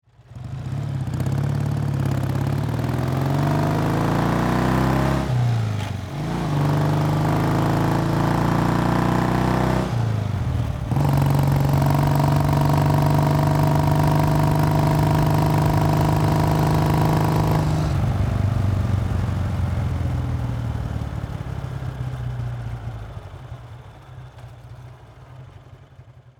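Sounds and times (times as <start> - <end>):
motorbike driving and accelerating: 0.1 - 26.2.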